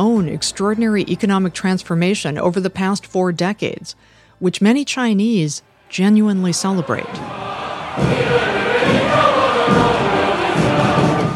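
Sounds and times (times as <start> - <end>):
speech: 0.0 - 8.4
large crowd cheering at a military parade: 6.5 - 11.3
low thuds: 7.0 - 11.3.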